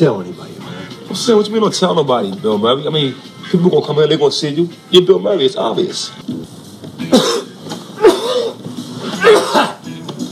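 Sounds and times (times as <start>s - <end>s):
speech: 0.0s - 0.4s, 1.1s - 7.4s
harsh raspy smoker's cough: 7.0s - 9.8s.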